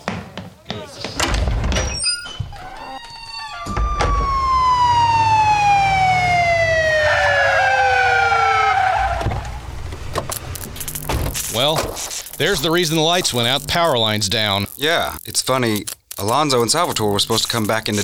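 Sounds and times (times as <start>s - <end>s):
short knocks and bumps: 0.0s - 4.8s, 9.1s - 12.2s
sheriff's car wailing siren: 2.5s - 9.7s
sheriff's car engine rumble: 4.0s - 12.3s
speech: 12.4s - 18.0s.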